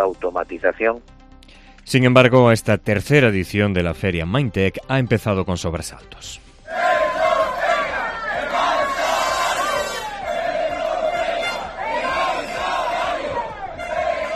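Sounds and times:
speech: 0:00.3 - 0:01.2, 0:01.9 - 0:06.8
crowd of metal workers chanting in unison at a blockade: 0:06.7 - 0:14.3.

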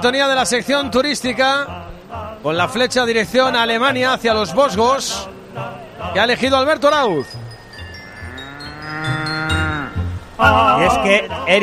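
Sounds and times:
speech: 0:00.0 - 0:07.4, 0:10.4 - 0:11.6
cow mooing: 0:07.9 - 0:10.2.

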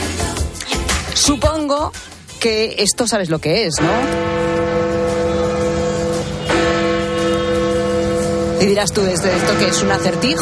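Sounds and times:
speech: 0:01.2 - 0:04.9, 0:08.6 - 0:10.4
church bells ringing: 0:03.8 - 0:10.4.

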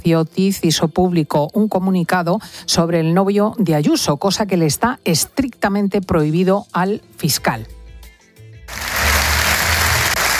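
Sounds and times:
speech: 0:00.0 - 0:07.8
loud ovation of crowd applause at a manifesto presentation in Madrid: 0:08.7 - 0:10.3.

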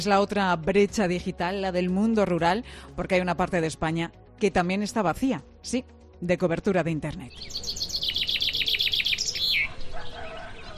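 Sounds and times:
speech: 0:00.0 - 0:07.8
small bird singing bright repeated chirps: 0:07.3 - 0:10.7.

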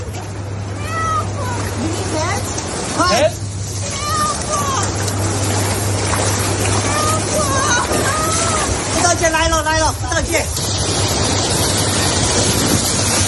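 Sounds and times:
choppy sea waves washing and churning: 0:00.0 - 0:13.2
low steady hum: 0:00.0 - 0:13.2
raised voices crying out: 0:03.8 - 0:05.1, 0:06.7 - 0:09.3.

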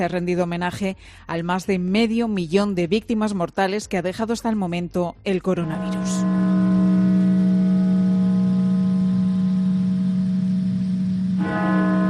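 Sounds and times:
speech: 0:00.0 - 0:06.5
deep cathedral bell ringing: 0:05.7 - 0:12.0.

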